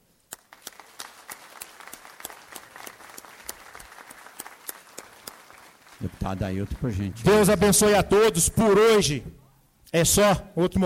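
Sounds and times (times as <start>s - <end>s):
crowd applauding: 0.3s - 8.0s
speech: 6.0s - 10.8s.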